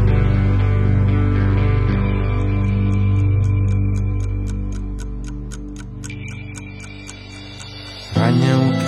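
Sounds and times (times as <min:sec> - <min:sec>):
warm sustained musical backdrop: 0:00.0 - 0:08.8
clock hands ticking: 0:01.8 - 0:08.8.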